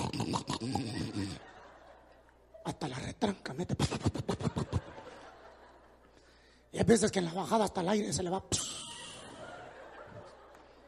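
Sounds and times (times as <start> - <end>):
voice imitating loud truck-like snoring of a sleeping man: 0.0 - 1.4
speech: 0.3 - 1.0, 2.7 - 4.7, 6.8 - 8.8
laughter: 0.6 - 3.1, 4.0 - 6.2, 8.6 - 10.8.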